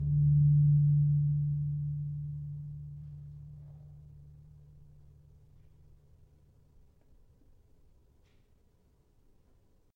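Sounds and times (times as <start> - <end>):
gong tuned to D sharp: 0.0 - 6.6.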